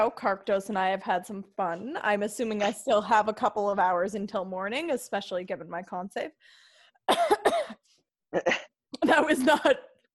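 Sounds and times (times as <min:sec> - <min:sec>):
speech: 0:00.0 - 0:09.9
person coughing harshly: 0:07.1 - 0:07.8, 0:08.4 - 0:09.1.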